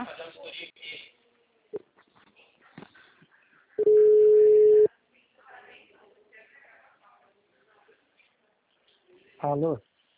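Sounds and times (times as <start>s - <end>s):
faint scattered sounds: 0.0s - 10.1s
telephone ringback tone while placing a call: 3.8s - 4.9s
speech: 9.4s - 9.9s.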